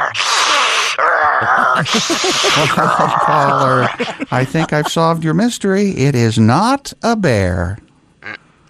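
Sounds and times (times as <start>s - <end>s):
person imitating a sump pump in a crawl space: 0.1s - 3.9s
laughter: 1.4s - 5.3s
speech: 1.8s - 7.9s.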